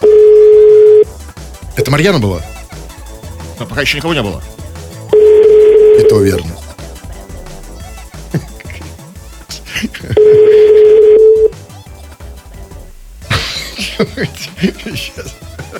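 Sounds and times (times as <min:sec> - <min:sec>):
telephone number being dialed: 0:00.0 - 0:01.0, 0:05.2 - 0:06.3, 0:10.2 - 0:11.5
loud steady telephone busy-line tone: 0:00.0 - 0:01.1, 0:05.1 - 0:06.4, 0:10.2 - 0:11.6
speech: 0:01.9 - 0:02.5, 0:03.6 - 0:04.6, 0:06.0 - 0:06.6
laughter: 0:08.0 - 0:11.0, 0:13.3 - 0:15.7.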